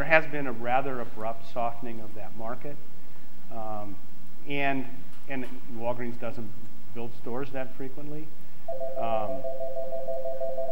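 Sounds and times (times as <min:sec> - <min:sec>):
speech: 0:00.0 - 0:10.7
telephone ringing with a steady electronic tone: 0:08.7 - 0:10.7.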